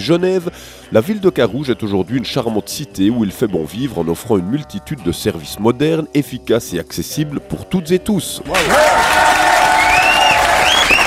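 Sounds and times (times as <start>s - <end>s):
speech: 0.0s - 9.4s
audience clapping: 8.5s - 11.0s
faint whistles from audience: 9.9s - 11.0s.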